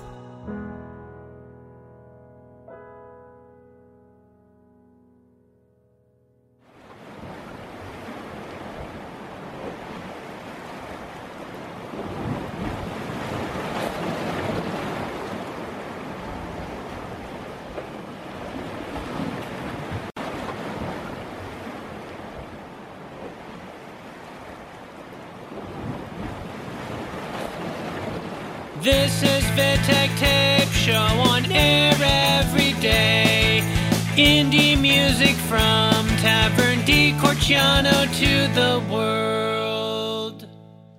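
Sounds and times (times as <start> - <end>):
music: 0.0 - 6.4, 28.8 - 40.9
loud steady roar of ocean surf: 6.7 - 40.4
gusting wind: 6.8 - 28.8
speech: 28.8 - 33.4, 34.2 - 39.4.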